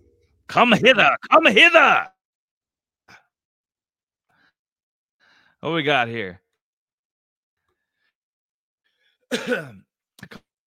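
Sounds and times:
speech: 0.5s - 2.2s, 5.6s - 6.4s, 9.3s - 10.4s
rough drawn-out throat clearing: 9.3s - 10.5s
short sharp coughs: 9.3s - 10.5s.

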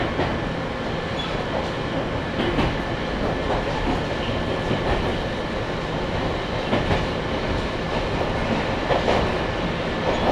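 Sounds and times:
local train wheels and car body rumbling: 0.0s - 10.3s
sharp clacks of train wheels over rail joints: 2.4s - 5.3s, 6.1s - 10.3s.

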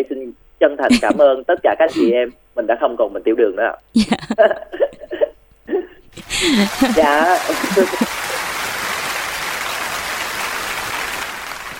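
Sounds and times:
speech: 0.0s - 4.9s, 6.2s - 8.3s
laughter: 0.9s - 1.3s, 4.0s - 11.7s
person cheering: 6.2s - 11.2s
crowd applauding: 6.2s - 11.7s.

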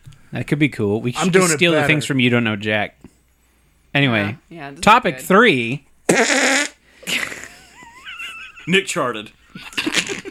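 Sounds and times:
speech: 0.3s - 3.1s, 3.9s - 7.2s, 8.7s - 9.9s
loud buzzy fart: 6.1s - 7.4s
laughter: 7.1s - 10.2s.

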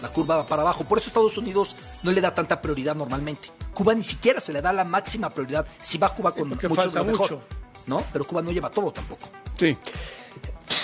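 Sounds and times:
speech: 0.0s - 10.5s
short breathy intakes and throaty sounds before a sneeze: 9.8s - 10.8s
person sneezing with breathy intakes and throaty build-up: 9.9s - 10.8s.

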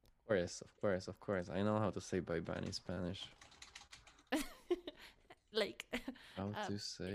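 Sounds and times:
speech: 0.3s - 3.5s, 5.5s - 7.1s
typing on a computer keyboard: 2.4s - 4.4s.

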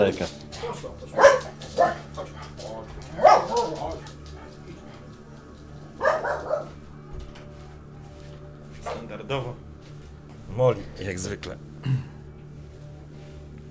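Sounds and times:
speech: 0.0s - 0.9s, 9.3s - 9.6s, 10.6s - 12.1s
faint steady low hum: 0.0s - 13.6s
dog barking in short yaps: 0.4s - 4.7s, 5.9s - 6.8s, 8.8s - 9.1s.

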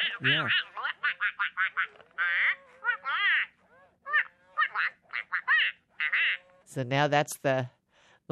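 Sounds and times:
toy robot duck quacking with electronic quacks: 0.0s - 6.6s
speech: 0.2s - 1.6s, 6.8s - 8.2s.

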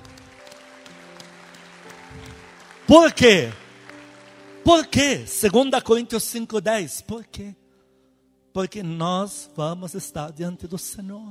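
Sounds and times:
audience clapping: 0.0s - 5.8s
speech: 2.2s - 3.6s, 4.7s - 7.6s, 8.5s - 11.2s.

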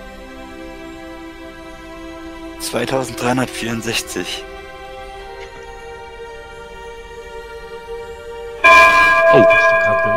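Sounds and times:
speech: 2.6s - 4.5s
ship's bell gong ringing: 8.6s - 10.1s.

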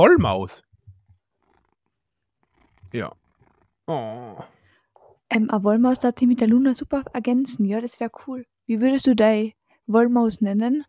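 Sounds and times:
speech: 0.0s - 0.7s, 2.9s - 3.2s, 3.9s - 4.5s, 5.3s - 10.8s
cat purring: 0.8s - 4.8s.

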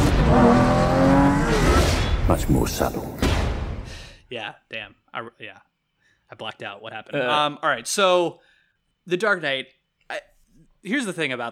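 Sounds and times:
Lamborghini car engine roaring while driving off: 0.0s - 3.0s
speech: 2.3s - 3.3s, 4.3s - 5.7s, 6.3s - 11.5s.

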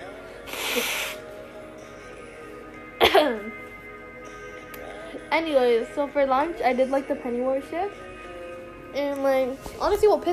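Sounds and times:
speech: 0.8s - 1.0s, 3.2s - 3.7s, 5.3s - 8.1s, 8.9s - 10.3s
gravelly voiced throat clearing: 3.0s - 3.5s
person coughing from a burning throat: 3.0s - 3.6s.

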